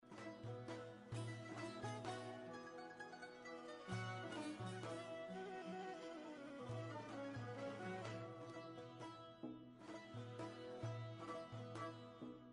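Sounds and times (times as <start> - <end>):
Iranian background music: 0.0 - 12.5.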